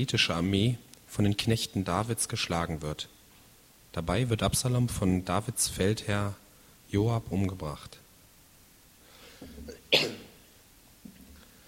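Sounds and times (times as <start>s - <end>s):
speech: 0.0s - 3.2s, 3.9s - 8.0s
person coughing: 9.4s - 10.4s.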